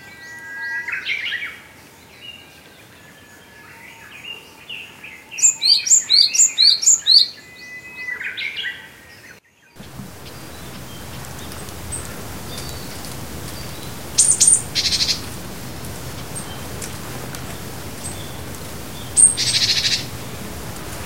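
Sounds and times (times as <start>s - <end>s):
hissy outdoor background: 0.1s - 7.5s, 9.8s - 21.0s
Japanese tit singing repeated phrases: 3.8s - 21.0s
brief sharp high calls: 9.8s - 21.0s.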